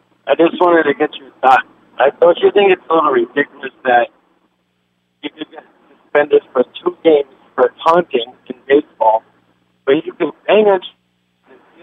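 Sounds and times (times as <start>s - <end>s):
voice garbled through a poor cell phone connection: 0.3s - 4.1s, 5.2s - 5.6s, 6.2s - 9.2s
speech: 0.3s - 4.2s, 5.2s - 9.3s, 9.9s - 11.0s.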